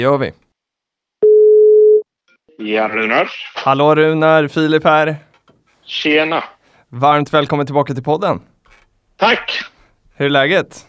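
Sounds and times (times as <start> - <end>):
speech: 0.0 - 0.4, 2.6 - 5.3, 5.9 - 8.5, 9.2 - 10.8
telephone ringing tone from an outgoing call: 1.2 - 2.0.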